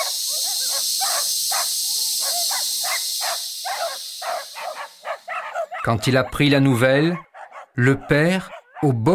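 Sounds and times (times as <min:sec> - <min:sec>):
huge long snake hissing: 0:00.0 - 0:05.8
speech: 0:05.8 - 0:09.1.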